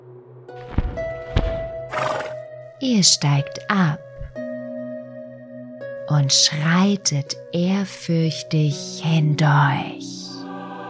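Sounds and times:
heavy hoof thuds: 0.6 - 2.4
horse whinnying: 1.9 - 2.4
speech: 2.8 - 4.0, 6.1 - 10.3.

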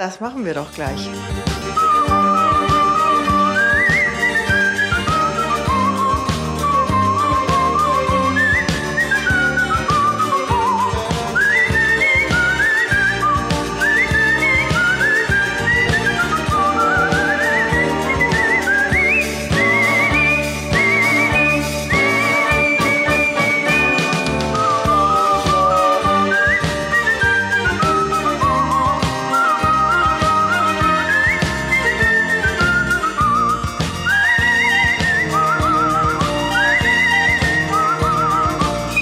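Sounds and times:
speech: 0.0 - 2.1
pop version of the orchestra with a driving pop beat: 0.0 - 39.0
art whistling of a classical symphony melody in G minor: 1.1 - 39.0.

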